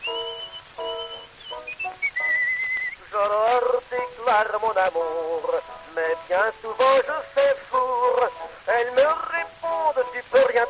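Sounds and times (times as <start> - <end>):
person whistling a tune: 0.0 - 3.0
speech: 4.2 - 10.6.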